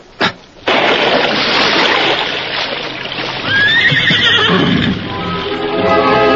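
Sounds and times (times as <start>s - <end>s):
continuous rush of splashing water: 0.0s - 6.2s
horse neighing: 3.4s - 5.7s.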